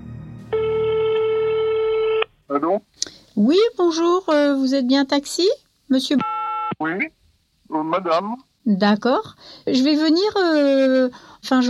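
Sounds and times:
low hum: 0.0 - 2.2
steady electronic telephone tone on a recorded phone call: 0.5 - 2.3, 6.2 - 6.8
speech: 2.6 - 11.6.

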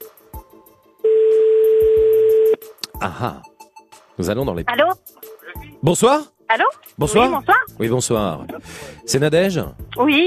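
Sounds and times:
telephone ringing tone after a number is dialed: 1.0 - 2.6
speech: 3.0 - 3.5, 4.2 - 5.2, 5.8 - 10.2.

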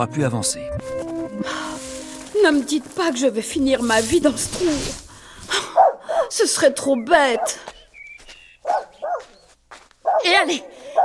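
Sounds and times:
speech: 0.0 - 1.6, 2.4 - 5.6, 6.4 - 7.7, 10.3 - 11.0
dog barking: 5.7 - 6.4, 8.6 - 9.4, 10.0 - 11.0.

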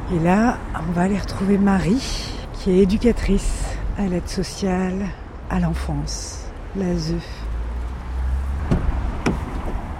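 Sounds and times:
speech: 0.1 - 7.4
family car doors closing: 8.6 - 9.9.

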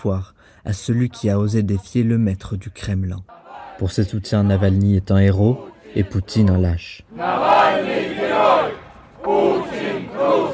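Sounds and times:
speech: 0.0 - 7.8, 8.4 - 10.5
large crowd chanting in unison at a rally: 3.3 - 10.5.

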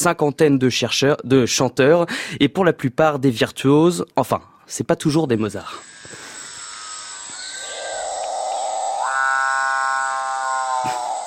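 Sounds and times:
speech: 0.0 - 6.2
capuchinbird droning chainsaw-like growl: 5.8 - 11.2.

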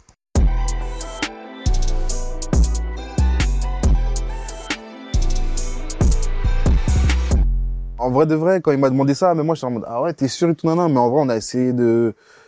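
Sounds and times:
hip-hop beat with booming bass and punchy kicks: 0.4 - 8.2
speech: 8.0 - 12.4.

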